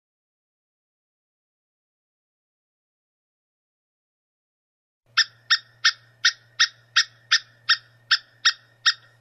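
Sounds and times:
low steady hum: 5.1s - 9.1s
squirrel giving rasping clipped notes: 5.1s - 9.1s.

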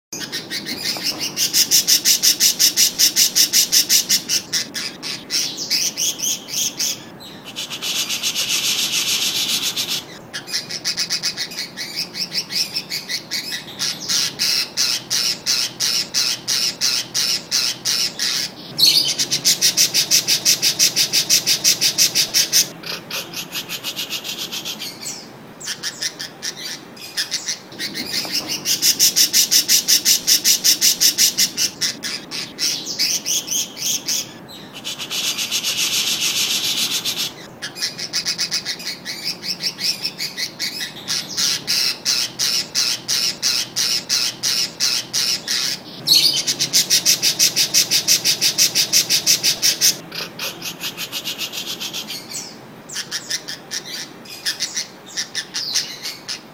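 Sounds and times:
parakeet singing: 0.2s - 56.5s.

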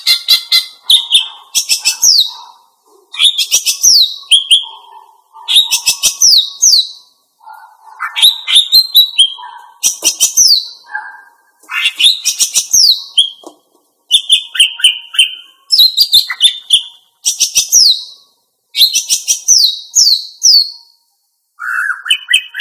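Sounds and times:
female greater green leafbird chattering song: 0.0s - 13.5s, 14.1s - 18.2s, 18.8s - 20.9s, 21.6s - 22.5s.

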